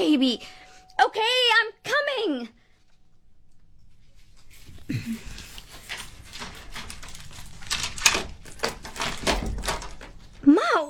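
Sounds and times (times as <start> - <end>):
doorbell ringing: 0.0 - 2.1
speech: 0.0 - 2.6
front door latch and handle clicking and rattling: 6.3 - 10.4
front door thumping as it swings open: 7.7 - 10.3.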